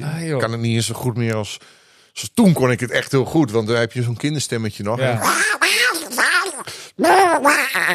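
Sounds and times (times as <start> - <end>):
speech: 0.2 - 5.9, 6.6 - 7.9
person imitating a cartoon duck quacking: 5.1 - 7.9.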